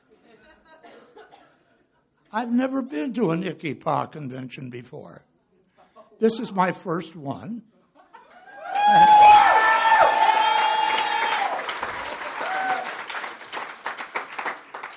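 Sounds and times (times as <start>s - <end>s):
speech: 2.3s - 5.3s, 6.2s - 7.7s, 8.9s - 9.4s
large convention crowd yelling and cheering: 8.3s - 13.2s
applause and scattered clapping: 8.6s - 14.9s.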